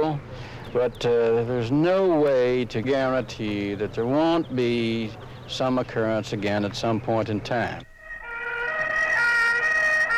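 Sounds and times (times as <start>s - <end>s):
speech: 0.1s - 7.9s
ambulance siren wailing racing through the streets of Rome: 7.9s - 10.1s.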